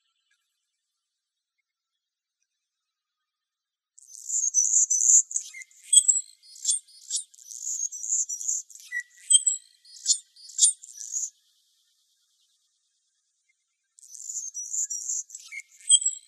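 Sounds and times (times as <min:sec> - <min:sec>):
Anna's hummingbird buzzy song in Arizona: 0:04.1 - 0:11.3, 0:14.0 - 0:16.2.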